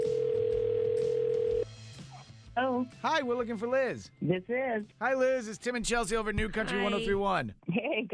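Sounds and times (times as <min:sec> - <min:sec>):
ringback tone of an outgoing phone call: 0:00.0 - 0:01.6
speech: 0:02.6 - 0:08.1.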